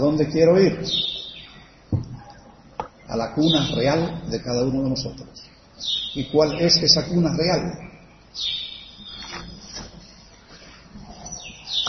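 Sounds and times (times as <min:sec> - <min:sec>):
speech: 0:00.0 - 0:01.2, 0:03.1 - 0:08.6
low noise: 0:00.0 - 0:11.8
small bird chirping: 0:00.8 - 0:03.9, 0:05.4 - 0:06.7, 0:08.2 - 0:10.3, 0:11.0 - 0:11.8
faint rustling: 0:09.0 - 0:11.7.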